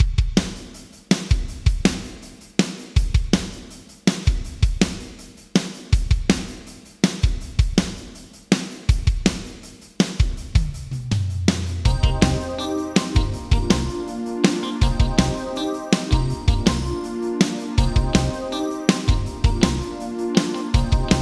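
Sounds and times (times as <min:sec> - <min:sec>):
Yamaha ProR3 drums with medium hall reverb: 0:00.0 - 0:21.2.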